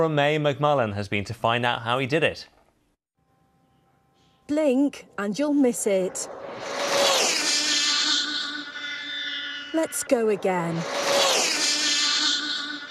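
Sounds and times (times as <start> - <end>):
speech: 0.0 - 2.6, 4.5 - 7.0, 9.7 - 11.0
remote control car whizzing past at speed on a world record run: 6.3 - 9.2, 10.7 - 12.9
shrill buzzing electric motor of a remote control car whining: 6.4 - 12.9.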